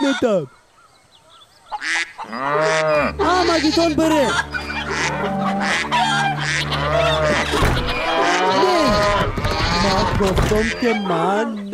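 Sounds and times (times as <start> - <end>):
geese or other fowl honking and squawking: 0.0 - 11.7
speech: 0.1 - 0.6, 1.8 - 4.6, 9.8 - 11.7
cow mooing in a long low call: 2.2 - 11.3.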